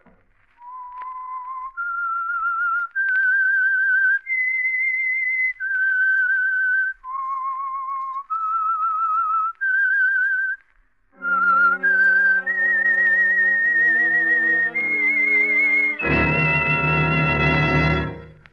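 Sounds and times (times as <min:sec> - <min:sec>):
lone whistler whistling a slow eerie melody: 0:00.6 - 0:10.6, 0:11.2 - 0:18.2
orchestra playing rising chords: 0:11.2 - 0:18.5.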